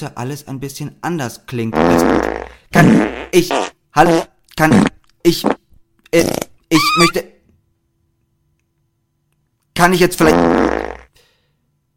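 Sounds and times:
speech: 0.0 - 7.3, 9.8 - 10.8
fart sound effect: 1.7 - 5.6, 6.2 - 7.2, 10.2 - 11.1.

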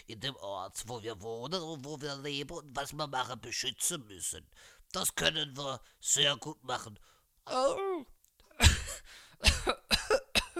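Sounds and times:
speech: 0.0 - 9.8
person coughing: 8.5 - 10.5.

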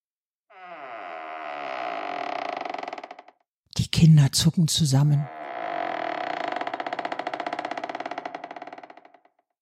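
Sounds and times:
old wooden wardrobe door creaking: 0.5 - 3.5, 5.2 - 9.6
speech: 3.9 - 5.4.

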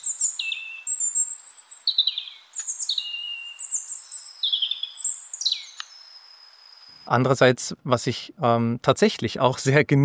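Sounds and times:
European robin singing high thin trills and whistled phrases: 0.0 - 7.2
speech: 7.1 - 10.0.

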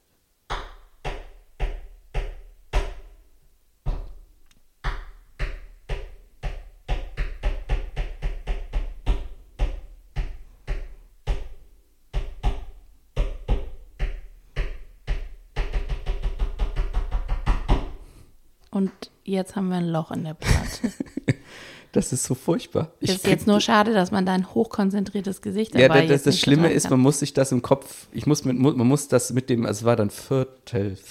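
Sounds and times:
pen tapping a rhythm on a hard surface: 0.5 - 3.1, 4.8 - 11.6, 12.2 - 18.0
speech: 18.8 - 21.1, 22.0 - 31.0.

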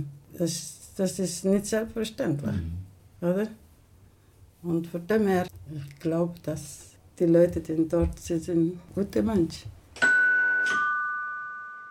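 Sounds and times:
speech: 0.0 - 3.6, 4.6 - 9.8
two-note ding-dong chime: 10.0 - 11.9.

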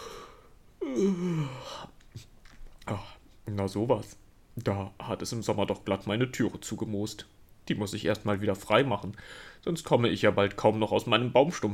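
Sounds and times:
person yawning after stretching: 0.0 - 1.9
speech: 3.6 - 11.7.

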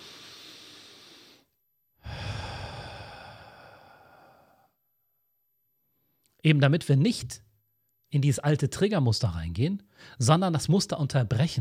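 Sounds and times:
slow deep breaths taken to calm down: 0.0 - 4.8, 9.9 - 10.2
speech: 6.4 - 7.5, 8.1 - 11.5.

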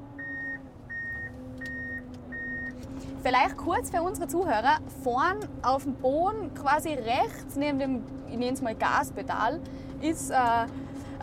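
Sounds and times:
snow groomer low steady engine drone: 0.0 - 11.2
snow groomer reversing beeps: 0.2 - 2.8
speech: 3.2 - 11.2.

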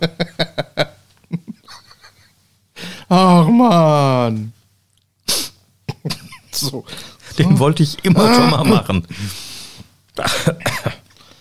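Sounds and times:
speech: 3.1 - 4.6, 6.6 - 9.4, 10.2 - 10.7
harsh throaty coughs: 8.2 - 8.9, 10.2 - 11.0.

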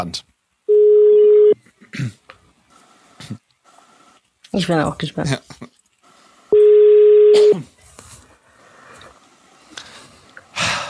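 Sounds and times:
speech: 0.0 - 0.3, 2.0 - 2.2, 4.5 - 5.8, 7.3 - 7.7
electronic telephone tone while dialing a call: 0.7 - 1.6, 6.5 - 7.5.

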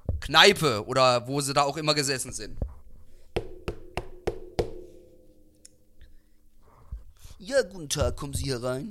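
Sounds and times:
speech: 0.3 - 2.7, 7.4 - 8.8
sharp knocks on a door with a hollow wooden ring: 3.4 - 5.0.

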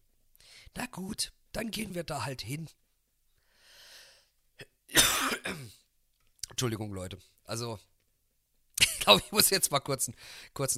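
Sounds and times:
speech: 0.9 - 2.8, 5.4 - 5.8, 6.6 - 7.9, 9.0 - 10.7
soft breathy exhale: 3.4 - 4.3
person coughing: 4.6 - 5.8.

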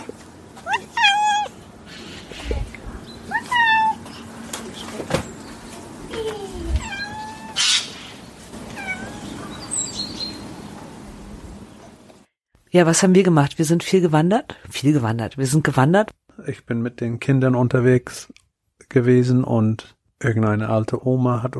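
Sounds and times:
cat meowing with drawn-out wavering cries: 0.6 - 1.6, 3.2 - 4.2, 6.2 - 8.1, 8.7 - 9.7
speech: 12.8 - 21.5.

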